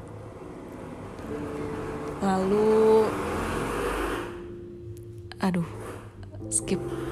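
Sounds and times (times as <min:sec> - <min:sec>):
loud motorcycle engine passing on a main road: 0:00.0 - 0:04.6
speech: 0:01.2 - 0:03.3, 0:05.4 - 0:05.8, 0:06.4 - 0:07.0.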